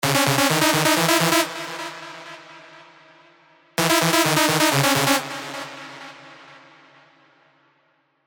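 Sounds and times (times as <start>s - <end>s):
synth lead: 0.0s - 2.5s, 3.8s - 6.5s.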